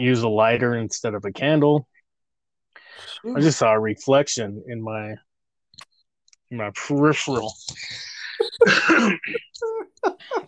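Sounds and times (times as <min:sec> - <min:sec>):
speech: 0:00.0 - 0:01.9, 0:03.0 - 0:05.3, 0:06.5 - 0:10.4
harsh throaty cough: 0:08.6 - 0:09.5.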